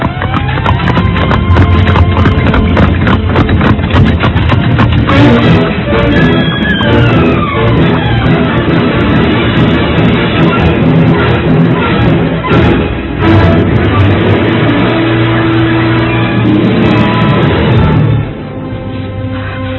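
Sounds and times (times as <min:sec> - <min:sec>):
horse hooves clip-clopping pulling a cart: 0:00.0 - 0:12.7
dense rumble of horse-drawn cart wheels: 0:00.0 - 0:18.7.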